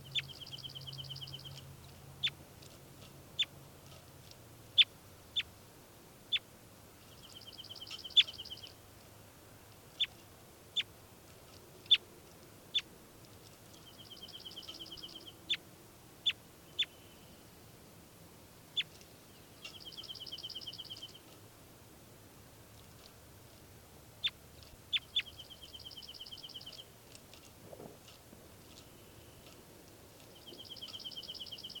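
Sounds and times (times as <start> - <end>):
bird chirps recorded outdoors: 0.0 - 2.4, 7.0 - 8.8, 13.7 - 15.6, 16.2 - 17.5, 18.7 - 21.3, 24.2 - 26.9, 30.2 - 31.7
hiss: 0.0 - 31.7.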